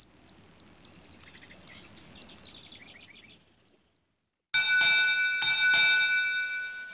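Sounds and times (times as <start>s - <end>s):
cedar waxwing high thin hissing calls: 0.0s - 4.5s
sustained ringing bell-like tone: 4.5s - 6.9s.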